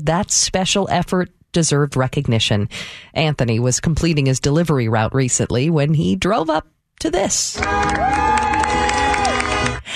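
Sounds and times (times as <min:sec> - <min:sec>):
speech: 0:00.0 - 0:09.0
shouts and whoops from adults and children: 0:07.6 - 0:09.8
neighborhood crowd of adults and children cheering: 0:07.6 - 0:09.9.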